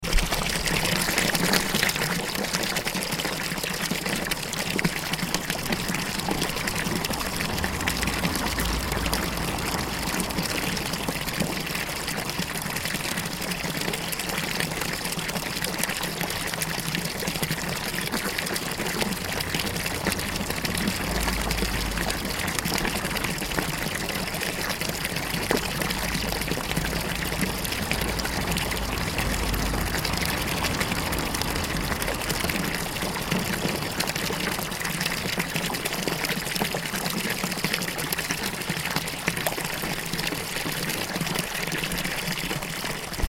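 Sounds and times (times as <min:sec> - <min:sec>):
fountain: 0:00.0 - 0:43.2
traffic: 0:04.8 - 0:15.2, 0:17.1 - 0:35.8.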